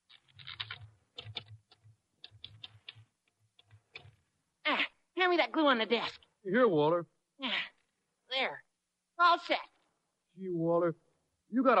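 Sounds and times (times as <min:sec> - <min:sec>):
typewriter keystrokes: 0:00.4 - 0:03.0
speech: 0:05.2 - 0:07.6, 0:08.4 - 0:08.6, 0:09.2 - 0:09.7, 0:10.4 - 0:11.7.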